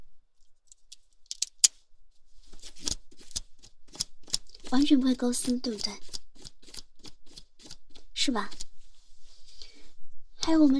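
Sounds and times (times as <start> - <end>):
pen scraping across lace-patterned synthetic stocking fabric: 2.5 - 8.8
speech: 4.7 - 6.1, 8.2 - 8.6, 10.5 - 10.7.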